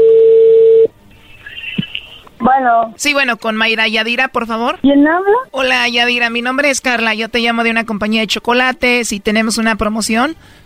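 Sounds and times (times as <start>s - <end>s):
steady loud telephone tone as a call connects: 0.0s - 0.9s
speech: 2.6s - 10.6s.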